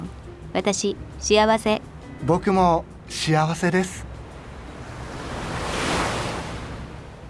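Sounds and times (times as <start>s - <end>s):
speech: 0.5s - 4.1s
wave washing in on a sandy beach in Kamakura Japan at dusk: 4.4s - 7.2s.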